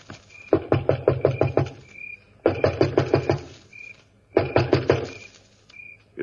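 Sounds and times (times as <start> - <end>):
rapid hollow knocking on a wooden door: 0.5 - 1.8, 2.4 - 3.5, 4.3 - 5.2.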